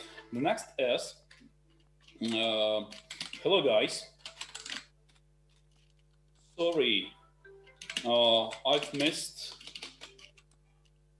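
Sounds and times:
speech: 0:00.3 - 0:01.2, 0:02.2 - 0:04.1, 0:06.6 - 0:07.2, 0:08.0 - 0:09.6
computer keyboard typing: 0:02.0 - 0:03.5, 0:04.1 - 0:05.2, 0:07.5 - 0:10.6.

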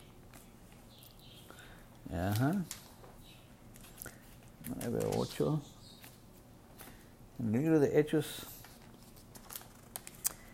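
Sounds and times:
speech: 0:02.1 - 0:02.8, 0:04.7 - 0:05.8, 0:07.4 - 0:08.5
thin sticky book pages being turned and peeled apart: 0:02.1 - 0:02.9, 0:03.7 - 0:07.0, 0:08.5 - 0:10.5.

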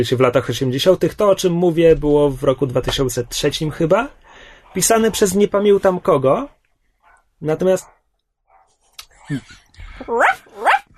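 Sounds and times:
speech: 0:00.0 - 0:06.6, 0:07.4 - 0:08.0, 0:09.3 - 0:10.7
dog barking behind a door: 0:07.0 - 0:09.4, 0:10.1 - 0:10.9.

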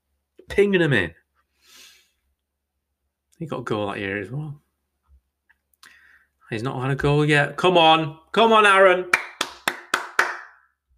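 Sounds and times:
speech: 0:00.6 - 0:01.2, 0:03.4 - 0:04.6, 0:06.5 - 0:09.2
sharp hand claps with room echo: 0:09.1 - 0:10.8.

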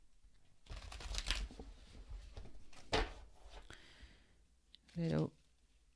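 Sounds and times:
deck of tarot cards being shuffled: 0:00.7 - 0:03.2
speech: 0:05.0 - 0:05.4.

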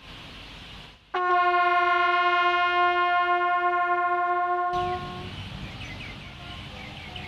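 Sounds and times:
bugle playing a long steady note sol: 0:01.2 - 0:05.3.

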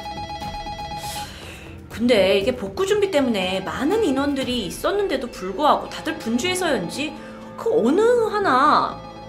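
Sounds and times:
telephone bell ringing in a busy community office in Japan: 0:00.0 - 0:01.4
speech: 0:02.0 - 0:09.0.

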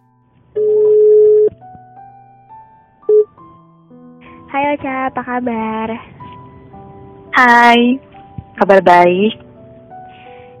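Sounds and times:
soft sustained music: 0:00.0 - 0:10.5
electronic ringback tone of an outgoing phone call: 0:00.6 - 0:01.5, 0:03.1 - 0:03.4
speech: 0:04.5 - 0:06.2, 0:07.4 - 0:09.4.

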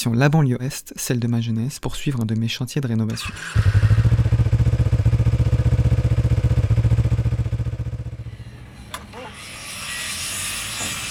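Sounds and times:
speech: 0:00.0 - 0:04.3
motorcycle engine started and idling in a garage box: 0:03.6 - 0:08.4.

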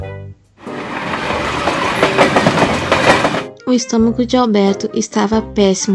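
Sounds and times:
train rumbling along rails with clattering wheels: 0:00.6 - 0:03.5
speech: 0:03.7 - 0:05.9.

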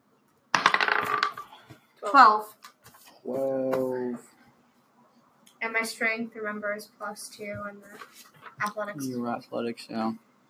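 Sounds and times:
dice clattering across a hard tabletop: 0:00.5 - 0:01.7
speech: 0:02.0 - 0:02.6, 0:03.2 - 0:04.3, 0:05.6 - 0:10.3.

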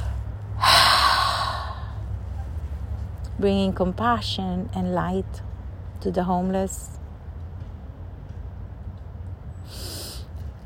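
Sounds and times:
long exhaled breath in guided breathing: 0:00.0 - 0:02.0
speech: 0:03.4 - 0:07.0.

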